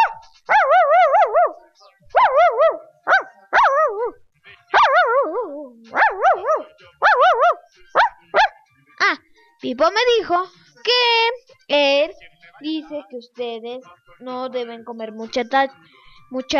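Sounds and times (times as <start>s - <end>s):
small dog yapping: 0.0s - 8.6s
speech: 9.7s - 10.6s, 11.7s - 16.5s.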